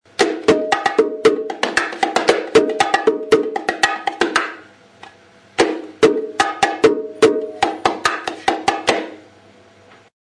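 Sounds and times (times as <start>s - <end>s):
bongo slap: 0.1s - 9.2s.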